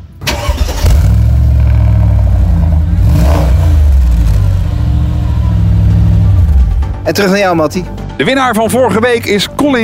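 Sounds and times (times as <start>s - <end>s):
car engine cranking, starting and revving in a showroom: 0.2s - 7.0s
speech: 7.1s - 9.8s.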